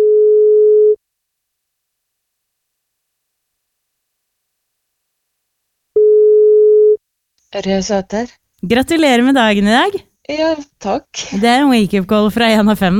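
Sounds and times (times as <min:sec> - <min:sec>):
telephone ringback tone: 0:00.0 - 0:01.0, 0:06.0 - 0:07.0
speech: 0:07.6 - 0:12.9.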